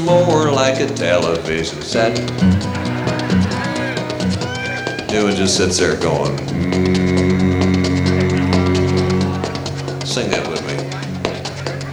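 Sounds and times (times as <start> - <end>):
speech: 0.0 - 2.9, 5.1 - 7.7, 10.2 - 10.6
laughter: 0.0 - 11.9
voice humming a throbbing drone imitating an old washing machine: 6.2 - 11.1.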